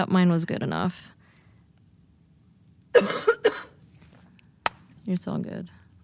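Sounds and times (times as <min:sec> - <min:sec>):
speech: 0:00.0 - 0:01.2, 0:02.9 - 0:03.6, 0:05.1 - 0:05.8
person coughing: 0:03.0 - 0:03.8.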